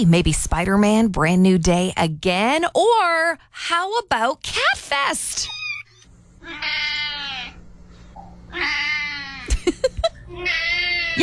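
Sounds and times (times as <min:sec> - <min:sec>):
speech: 0:00.0 - 0:05.6, 0:06.4 - 0:07.2, 0:08.5 - 0:09.1
cat meowing: 0:05.5 - 0:07.6, 0:08.5 - 0:09.4, 0:10.4 - 0:11.2
laughter: 0:09.4 - 0:10.3.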